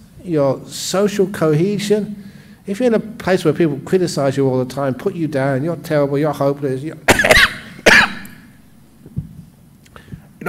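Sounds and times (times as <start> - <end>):
speech: 0.2 - 7.5
harsh coughs: 7.1 - 8.5.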